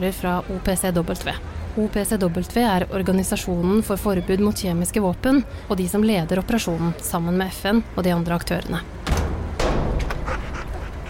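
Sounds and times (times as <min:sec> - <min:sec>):
speech: 0:00.0 - 0:09.0
bomb-sniffing dog panting while searching: 0:10.1 - 0:11.0.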